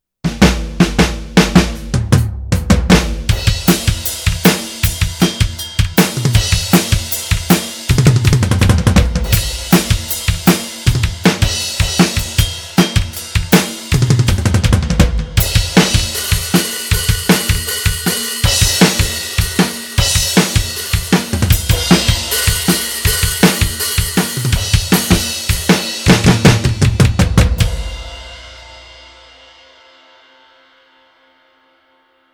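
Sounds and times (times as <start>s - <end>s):
heavy rock drum kit: 0.3s - 29.6s.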